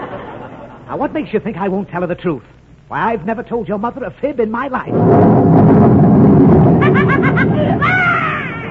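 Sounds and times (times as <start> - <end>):
laughter: 0.0 - 0.9, 6.8 - 8.2
speech: 0.9 - 6.5
deep rumble of thunder: 4.9 - 8.6
rising wail: 5.2 - 8.6.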